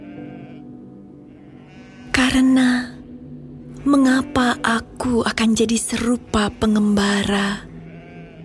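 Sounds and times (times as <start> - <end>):
sheep bleating: 0.0 - 2.8, 3.7 - 4.9, 5.9 - 8.4
speech: 2.3 - 2.9, 3.8 - 7.7.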